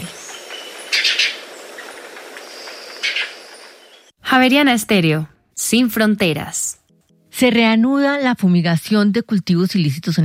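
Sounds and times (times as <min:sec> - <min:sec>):
guayabero ocre bird trilling: 0:00.0 - 0:04.1
speech: 0:04.4 - 0:06.6, 0:07.4 - 0:10.2.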